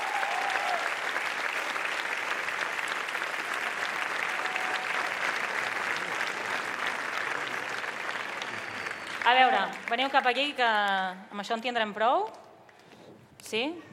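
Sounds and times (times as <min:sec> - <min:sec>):
audience applauding two radio journalists: 0:00.0 - 0:10.5
speech: 0:09.3 - 0:12.4, 0:13.5 - 0:13.9.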